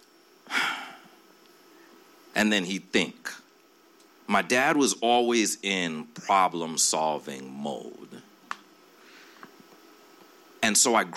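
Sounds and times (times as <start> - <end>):
man imitating a deep breath out: 0.5 - 1.2
speech: 2.4 - 3.4, 4.3 - 8.2, 10.7 - 11.1.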